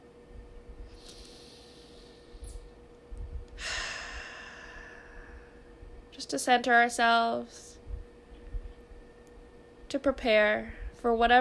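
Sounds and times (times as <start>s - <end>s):
deep slow breaths: 0.9s - 2.8s, 3.4s - 5.9s
speech: 6.2s - 7.7s, 9.9s - 11.3s.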